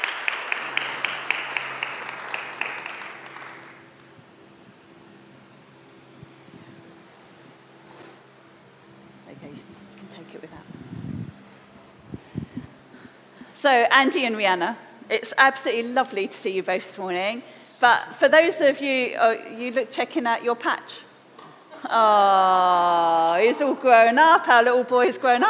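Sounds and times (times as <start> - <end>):
applause from a small group at a morning gathering: 0.0 - 4.2
quiet room hum: 0.0 - 25.4
speech: 13.6 - 21.1, 21.8 - 25.4.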